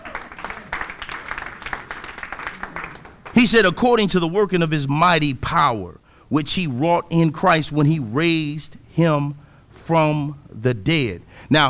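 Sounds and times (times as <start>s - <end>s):
crowd applauding with dense overlapping hand claps: 0.0s - 7.9s
faint murmur of voices: 0.0s - 8.5s
laughter: 0.0s - 11.6s
speech: 3.4s - 11.6s.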